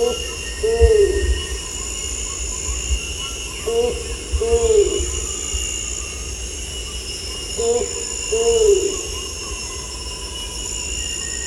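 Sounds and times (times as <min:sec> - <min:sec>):
Bornean ground cuckoo giving low rounded hoots at Danum: 0:00.0 - 0:06.0, 0:07.6 - 0:10.6
steady high insect drone: 0:00.0 - 0:11.4.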